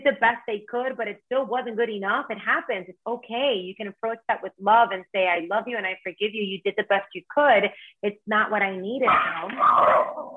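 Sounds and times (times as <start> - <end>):
speech: 0.0 - 10.3
dog barking: 9.1 - 10.3.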